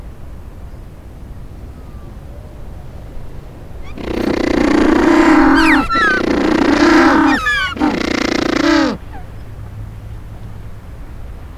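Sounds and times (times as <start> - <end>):
penguin braying calls: 3.8 - 9.3.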